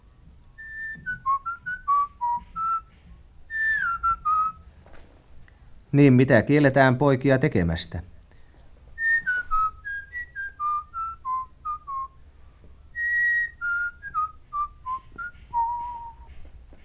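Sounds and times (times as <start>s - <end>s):
faint low hum: 0.0s - 16.8s
person whistling a tune: 0.6s - 2.9s, 3.5s - 4.6s, 9.0s - 12.2s, 12.9s - 16.3s
speech: 5.9s - 8.1s.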